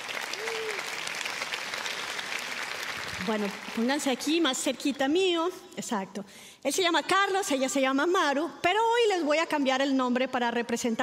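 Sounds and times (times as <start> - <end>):
crowd applauding: 0.0 - 4.1
speech: 3.2 - 11.0.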